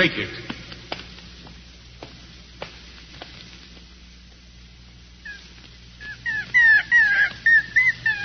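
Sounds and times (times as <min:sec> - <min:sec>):
speech: 0:00.0 - 0:00.5
hum: 0:00.0 - 0:08.2
small puppy aboard a ship whining and yelping: 0:06.0 - 0:08.2.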